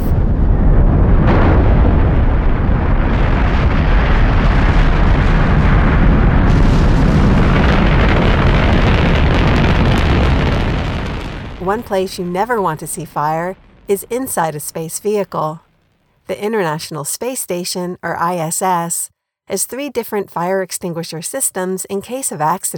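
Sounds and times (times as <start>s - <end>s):
thunderous rocket liftoff roar with deep crackling rumble: 0.0s - 15.1s
speech: 11.7s - 15.6s, 16.3s - 22.7s.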